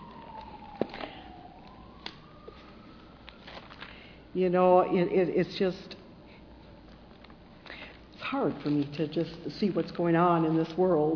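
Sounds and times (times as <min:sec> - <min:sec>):
emergency vehicle siren wailing: 0:00.0 - 0:05.3
speech: 0:04.4 - 0:05.9, 0:08.3 - 0:11.1.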